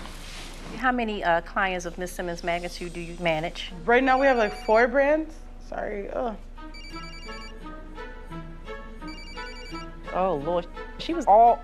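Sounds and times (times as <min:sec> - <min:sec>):
speech: 0:00.8 - 0:07.0, 0:10.2 - 0:11.6
mobile phone ringtone playing an electronic melody: 0:04.2 - 0:04.9, 0:06.7 - 0:07.6, 0:09.0 - 0:10.0.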